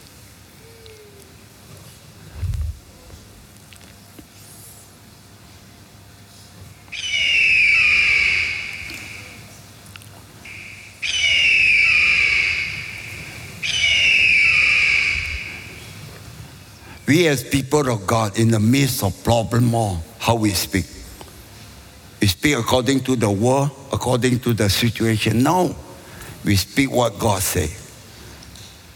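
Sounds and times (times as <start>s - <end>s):
voice imitating an eagle's cry: 7.0s - 9.4s, 10.5s - 15.8s
speech: 17.1s - 21.0s, 22.4s - 25.8s, 26.4s - 27.8s.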